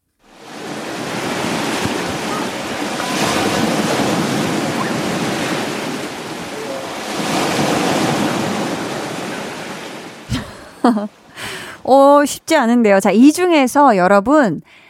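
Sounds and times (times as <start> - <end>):
sea waves washing ashore: 0.2 - 11.9
laughter: 10.3 - 11.1
speech: 10.9 - 14.8.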